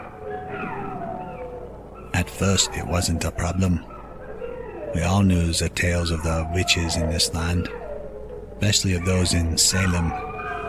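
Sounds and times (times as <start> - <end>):
wolves yipping and barking: 0.0 - 10.6
speech: 2.2 - 3.9, 4.9 - 7.8, 8.6 - 10.3.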